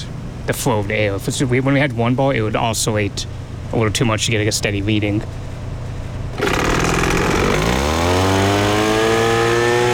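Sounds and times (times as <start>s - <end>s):
speech: 0.5s - 5.4s
gas leaf blower small engine running: 6.4s - 9.9s.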